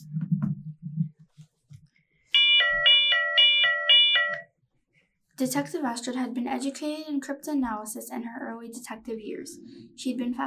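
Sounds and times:
loud electronic two-tone alarm beeping: 0:02.4 - 0:04.5
speech: 0:05.4 - 0:10.4.

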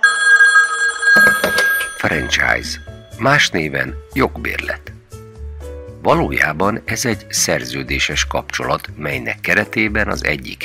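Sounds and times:
telephone ringing: 0:00.0 - 0:03.7
speech: 0:02.0 - 0:04.9, 0:06.0 - 0:10.6.

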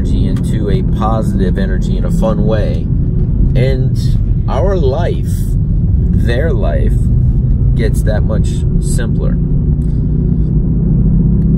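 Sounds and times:
car engine rumble while driving: 0:00.0 - 0:11.5
speech: 0:00.8 - 0:02.9, 0:03.6 - 0:07.0, 0:07.8 - 0:10.0.

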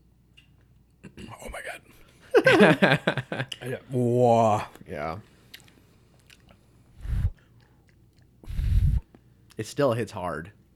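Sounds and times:
laughter: 0:02.3 - 0:03.8
speech: 0:02.5 - 0:05.3, 0:09.6 - 0:10.6
wet chewing: 0:05.5 - 0:08.4.

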